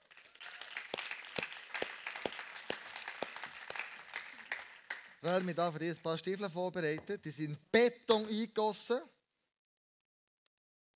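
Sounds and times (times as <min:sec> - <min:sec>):
audience applauding: 0:00.0 - 0:05.6
speech: 0:05.2 - 0:09.2.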